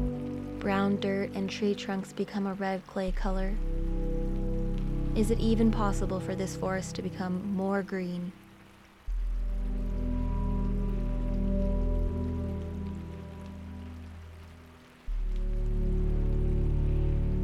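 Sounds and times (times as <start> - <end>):
low sustained droning tones: 0.0 - 2.2, 3.0 - 7.1, 8.6 - 17.4
steady rain falling in a forest: 0.0 - 17.4
speech: 0.6 - 3.9, 5.2 - 8.4.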